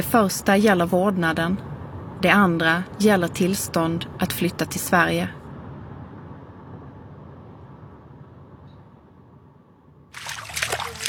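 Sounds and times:
speech: 0.0s - 5.4s
water trickling and rushing with a low rumbling wash: 10.2s - 11.0s.

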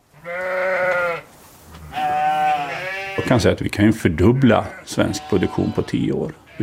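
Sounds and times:
sheep and lambs bleating in a pasture in Sweden: 0.1s - 3.5s, 4.1s - 6.6s
speech: 3.3s - 6.6s.

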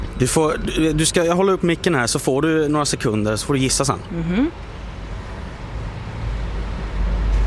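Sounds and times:
broadband road noise: 0.0s - 7.4s
buses rumbling in traffic: 0.0s - 7.4s
speech: 0.2s - 4.8s.

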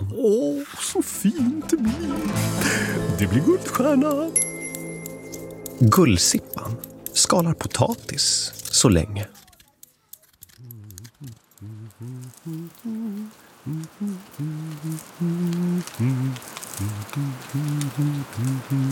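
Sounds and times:
steady rain pattering: 0.0s - 18.9s
speech: 0.2s - 4.5s, 5.8s - 9.4s, 11.6s - 18.9s
gentle melodic tune in short repeated notes: 1.5s - 9.2s.

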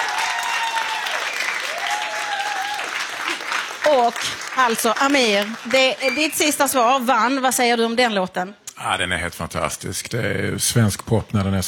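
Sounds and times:
audience applause: 0.0s - 6.6s
speech: 3.8s - 11.6s.

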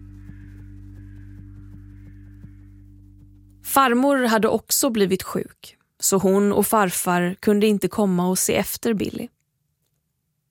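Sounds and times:
faint hoarse bird calls: 0.0s - 3.5s
steady low hum: 0.0s - 3.8s
speech: 3.7s - 9.4s.

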